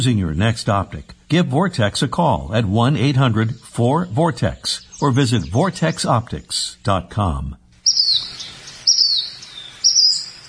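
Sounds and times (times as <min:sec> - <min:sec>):
speech: 0:00.0 - 0:07.6
bird chirping: 0:02.6 - 0:07.0, 0:07.8 - 0:10.4.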